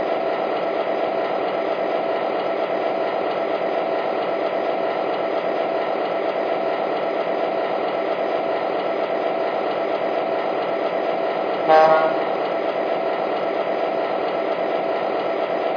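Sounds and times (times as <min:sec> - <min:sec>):
passenger train rumbling: 0:00.0 - 0:15.7
passenger train horn toot: 0:11.7 - 0:12.3.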